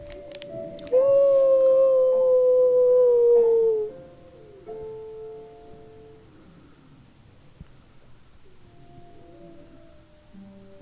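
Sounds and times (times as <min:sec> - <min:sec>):
long loud howl: 0:00.9 - 0:04.8, 0:08.6 - 0:10.7.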